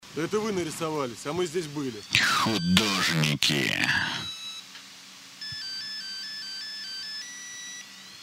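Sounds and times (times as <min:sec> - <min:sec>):
speech: 0:00.2 - 0:04.3
phone ringtone with bright electronic beeping melody: 0:05.5 - 0:07.8.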